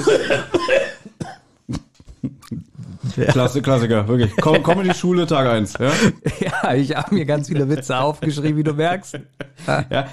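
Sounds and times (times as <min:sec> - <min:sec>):
laughter: 0:00.0 - 0:00.7, 0:01.8 - 0:10.1
speech: 0:00.0 - 0:01.0, 0:03.2 - 0:10.1
rough hacking coughs: 0:00.0 - 0:01.9.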